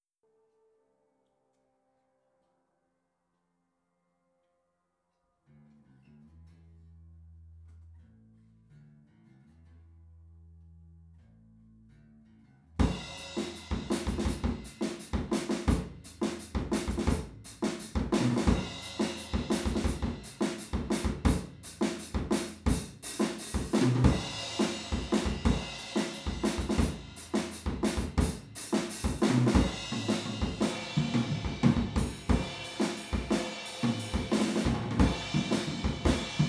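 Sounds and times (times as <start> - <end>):
drums recorded with PZM omni stereo microphones: 12.8 - 36.4.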